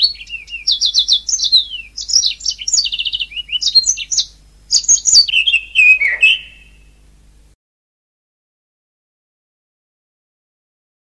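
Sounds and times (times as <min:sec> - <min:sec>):
Oriental magpie-robin singing: 0:00.0 - 0:06.9.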